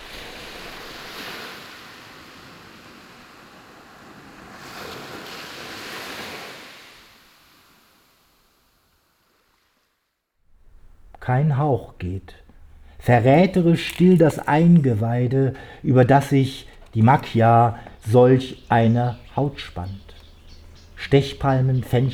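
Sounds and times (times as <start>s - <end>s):
sea waves crashing onto stones: 0.0s - 7.8s, 13.0s - 18.1s
speech: 11.2s - 12.4s, 13.0s - 20.2s, 21.0s - 22.1s.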